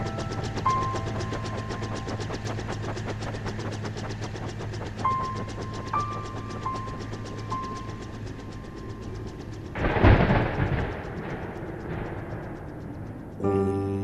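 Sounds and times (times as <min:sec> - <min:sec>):
steady droning background: 0:00.0 - 0:14.0
deep rolling crackling rumble: 0:09.7 - 0:14.0.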